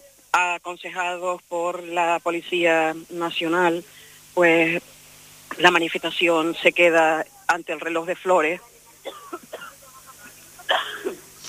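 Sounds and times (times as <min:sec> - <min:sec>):
speech: 0:00.4 - 0:05.0, 0:05.6 - 0:09.3
short cough: 0:10.7 - 0:11.2.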